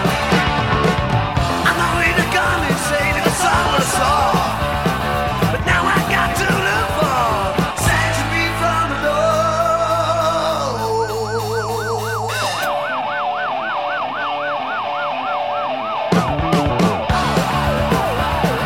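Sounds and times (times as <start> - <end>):
rock band with drums and guitars: 0.0 - 18.6
wailing siren sound effect in a rock song: 10.2 - 17.2.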